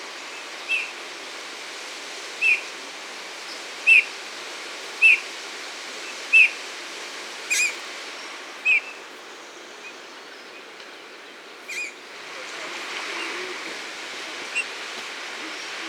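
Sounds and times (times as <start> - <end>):
steady hiss: 0.0 - 15.8
Eurasian bullfinch Pyrrhula pyrrhula whistled calls: 5.0 - 5.2, 7.5 - 7.8, 11.7 - 12.0.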